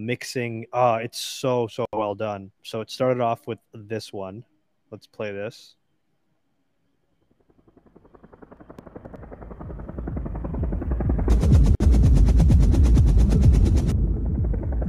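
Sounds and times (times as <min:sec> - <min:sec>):
speech: 0:00.0 - 0:05.8
helicopter rotor thumping: 0:07.2 - 0:14.8.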